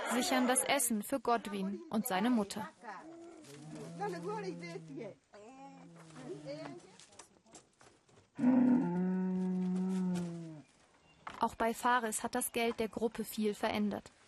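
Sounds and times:
speech: 0:00.1 - 0:02.8, 0:04.0 - 0:05.2, 0:06.2 - 0:06.9, 0:08.4 - 0:08.8, 0:11.4 - 0:14.2
cows mooing: 0:03.4 - 0:05.1, 0:08.4 - 0:10.5.

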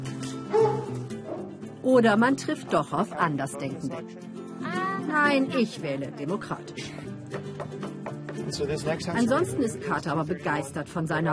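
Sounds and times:
dog barking: 0:00.5 - 0:01.6
speech: 0:01.9 - 0:07.0, 0:08.5 - 0:11.3.

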